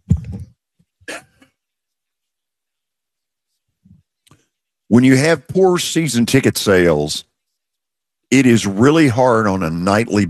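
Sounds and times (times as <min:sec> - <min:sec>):
man coughing: 0:01.0 - 0:01.5
speech: 0:04.9 - 0:07.3, 0:08.3 - 0:10.2.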